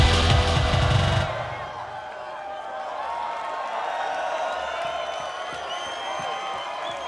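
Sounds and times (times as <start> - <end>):
loud bass-heavy music at a live club night: 0.0 - 1.7
large crowd at a live club night screaming and cheering: 0.0 - 7.0.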